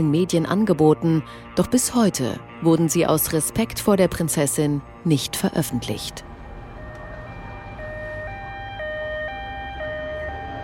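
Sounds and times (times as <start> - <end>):
speech: 0.0 - 6.3
rumbling traffic or engine noise: 4.3 - 10.6
two-tone ambulance siren: 5.4 - 10.6.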